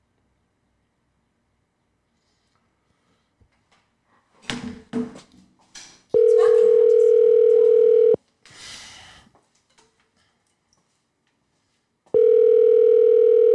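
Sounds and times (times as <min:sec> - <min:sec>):
phone ringback tones: 0:06.2 - 0:08.2, 0:12.1 - 0:13.5.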